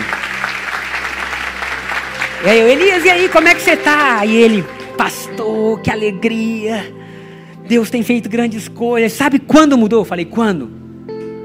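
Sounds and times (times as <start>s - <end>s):
crowd applauding: 0.0s - 6.1s
speech: 2.4s - 7.0s, 7.7s - 10.8s.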